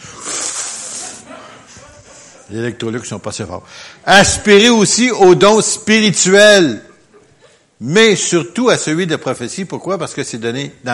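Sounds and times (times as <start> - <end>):
person making a forceful inhaling hiss imitating a vacuum cleaner: 0.0 - 1.3
speech: 2.5 - 6.9, 7.8 - 10.9.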